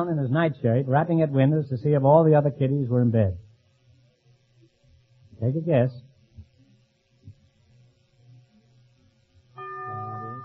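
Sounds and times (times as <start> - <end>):
speech: 0.0 - 3.4, 5.4 - 6.1
single bell tolling for wrong answer: 9.6 - 10.4.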